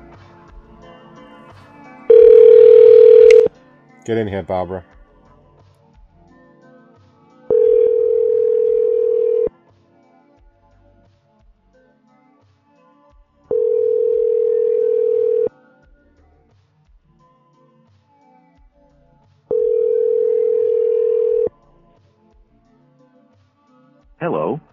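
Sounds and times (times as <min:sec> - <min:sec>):
telephone ringback tone on an outgoing call: 0:02.1 - 0:03.5, 0:07.5 - 0:09.5, 0:13.5 - 0:15.5, 0:19.5 - 0:21.5
speech: 0:04.0 - 0:04.9.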